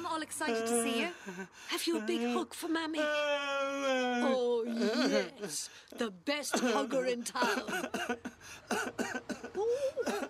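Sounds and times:
speech: 0.2s - 10.2s
child coughing with a strained whoop: 6.5s - 10.2s.

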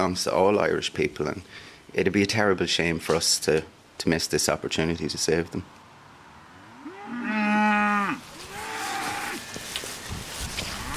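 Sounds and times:
speech: 0.0s - 5.8s
faint outdoor noise: 0.0s - 10.9s
cow mooing: 6.6s - 9.5s.

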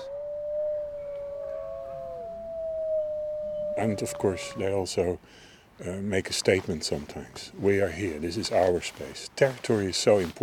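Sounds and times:
wolf pack howling together: 0.0s - 4.8s
speech: 3.8s - 10.4s.

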